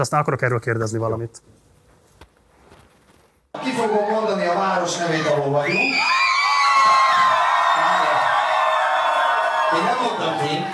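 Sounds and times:
speech: 0.0 - 1.6, 3.6 - 6.2
large concert crowd shouting and cheering in Szombathely Hungary: 3.6 - 10.7.

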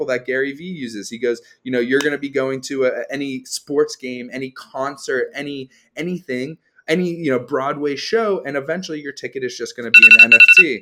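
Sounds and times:
speech: 0.0 - 10.7
phone alarm ringing with bright electronic beeps: 10.0 - 10.7.

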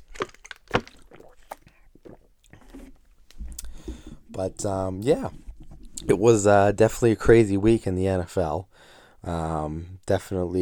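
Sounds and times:
soft mouth clicks: 0.0 - 2.6, 3.3 - 3.8
person sipping water: 0.0 - 4.4
speech: 4.4 - 5.4, 6.1 - 10.5.

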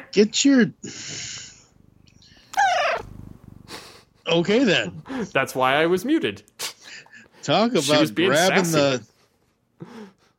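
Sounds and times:
speech: 0.1 - 1.4, 4.3 - 6.5, 7.4 - 9.1
cat meowing: 2.6 - 3.1
cat purring: 2.6 - 3.8.

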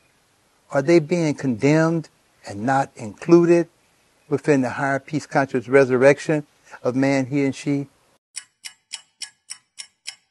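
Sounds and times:
speech: 0.7 - 7.9
pendulum clock ticking: 8.4 - 10.2.

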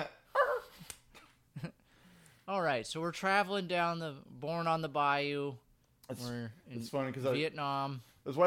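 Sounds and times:
dog barking and yipping: 0.3 - 0.9
speech: 2.5 - 8.4.

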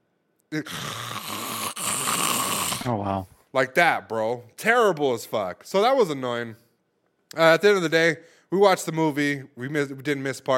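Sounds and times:
speech: 0.5 - 1.2, 2.8 - 6.6, 7.3 - 10.5
voice imitating loud snoring: 0.6 - 3.2.

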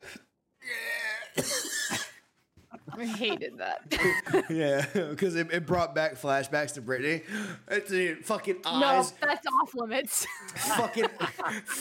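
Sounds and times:
harsh sharp coughs after taking a hit: 1.0 - 2.2
laughter: 2.8 - 5.2, 10.2 - 11.7
speech: 3.0 - 11.7.

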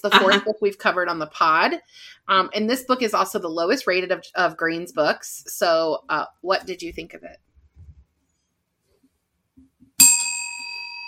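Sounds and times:
speech: 0.0 - 7.5
soft thumps: 6.9 - 8.1
small bell ringing: 10.0 - 11.0.

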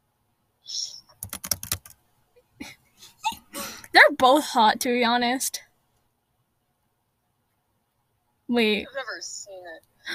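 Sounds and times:
crunchy computer keyboard typing: 1.2 - 2.0
speech: 4.0 - 5.7, 8.5 - 10.1.

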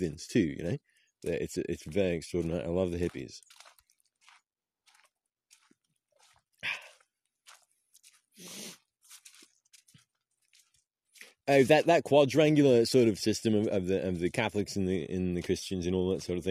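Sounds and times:
speech: 0.0 - 3.7, 11.5 - 16.4
person sipping and slurping hot cocoa: 8.4 - 9.4.

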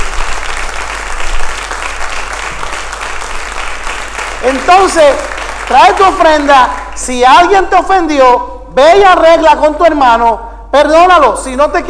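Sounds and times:
audience applauding: 0.0 - 7.1
speech: 4.4 - 11.8.

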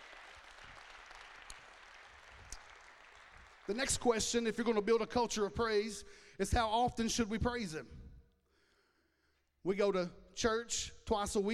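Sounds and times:
church sermon audience clapping: 0.0 - 4.4
speech: 3.7 - 8.0, 9.6 - 11.5.

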